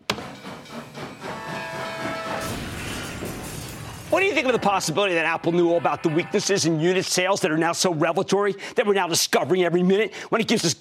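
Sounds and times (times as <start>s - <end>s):
freight train roaring past at speed: 0.1s - 7.0s
sustained whistle-like tone: 0.4s - 3.1s
speech: 4.1s - 10.7s.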